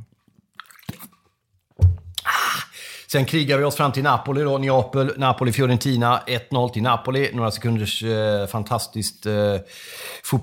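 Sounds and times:
swallowing gulp of lightly carbonated mineral water: 0.0 - 1.3
wet mouth clicks while sipping lightly carbonated mineral water: 0.5 - 1.3, 2.1 - 2.4
speech: 3.1 - 10.4.

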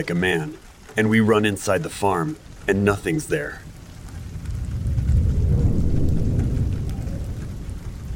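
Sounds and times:
speech: 0.0 - 3.7
steady pouring rain: 0.0 - 8.1
deep rolling rumble of thunder: 2.4 - 8.1.

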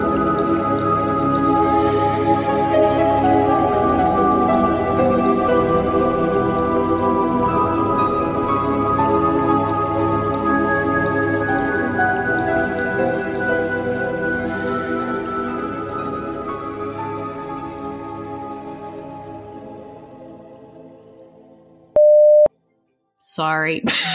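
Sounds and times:
sustained music: 0.0 - 21.2
smartphone notification alert electronic tone: 22.0 - 22.5
speech: 23.4 - 24.1.

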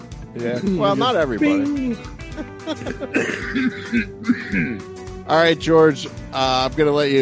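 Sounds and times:
speech: 0.4 - 7.2
laughter: 2.2 - 4.8
raspy coughing fit: 2.8 - 4.8.

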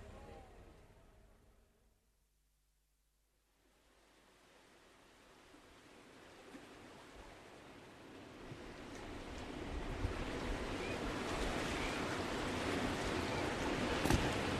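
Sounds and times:
ocean waves breaking on the beach at Silver Strand: 5.3 - 14.5.

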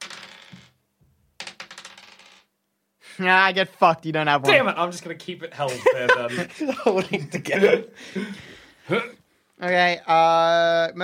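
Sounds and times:
dice rattling and clattering across a hard surface: 0.0 - 0.7, 1.4 - 2.5
speech: 3.2 - 11.0
laughter: 4.5 - 4.7, 5.6 - 9.1.

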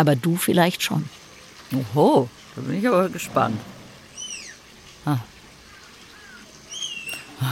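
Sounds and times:
speech: 0.0 - 3.7, 5.0 - 5.3
tapir high-pitched whistling squeals: 3.2 - 4.8, 5.7 - 7.4.

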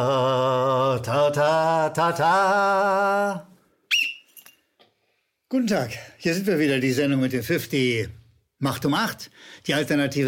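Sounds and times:
speech: 1.0 - 3.5, 5.5 - 10.2
referee whistle blast with a rattling trill: 3.9 - 4.5.

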